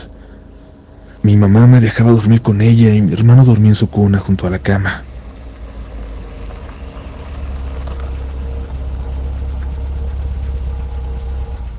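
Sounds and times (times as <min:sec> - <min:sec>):
distant car engine running: 0:00.0 - 0:11.7
speech: 0:01.2 - 0:05.1.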